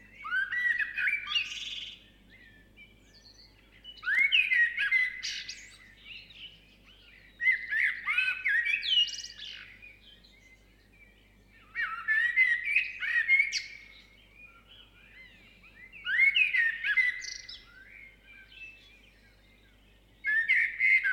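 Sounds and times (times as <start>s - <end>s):
birds twittering and chirping at sunrise in the South Seas: 0.0s - 21.1s.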